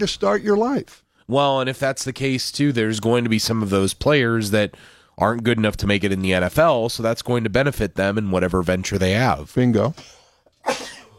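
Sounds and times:
speech: 0.0s - 10.9s
person sneezing: 10.0s - 11.1s.

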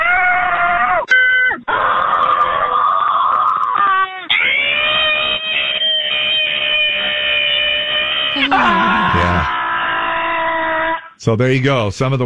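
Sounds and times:
people screaming over a phone line: 0.0s - 11.2s
speech: 11.2s - 12.2s.

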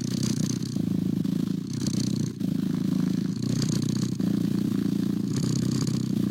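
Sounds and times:
domestic cat purring: 0.0s - 6.3s.

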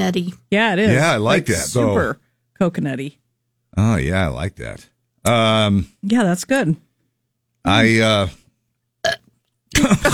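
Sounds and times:
speech: 0.0s - 6.8s, 7.6s - 8.4s, 9.0s - 10.1s
person burping after drinking carbonated soda: 9.0s - 9.9s.

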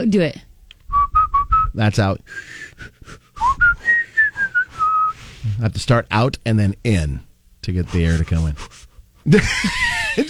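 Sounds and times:
speech: 0.0s - 0.5s, 1.8s - 3.2s, 5.5s - 10.2s
person whistling a short wandering tune on the out-breath: 0.9s - 5.2s
laughter: 9.3s - 10.2s.

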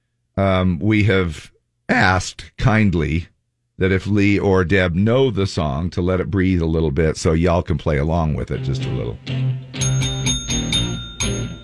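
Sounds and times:
speech: 0.4s - 10.1s
sustained musical backing with steady harmonic tones: 8.5s - 11.6s
bright bell ringing in rhythmic strikes: 9.7s - 11.6s.

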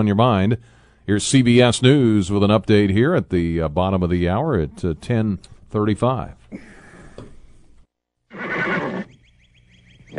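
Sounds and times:
speech: 0.0s - 6.7s
horse whinnying: 8.3s - 9.2s.

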